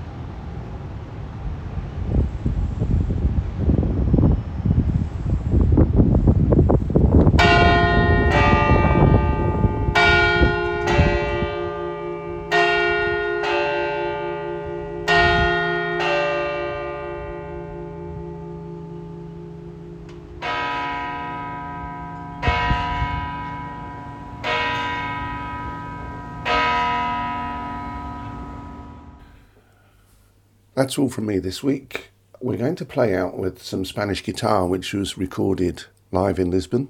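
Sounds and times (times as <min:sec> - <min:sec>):
wind noise: 0:00.0 - 0:29.4
large basilica church bells pealing outdoors: 0:07.2 - 0:29.4
speech: 0:30.9 - 0:36.8.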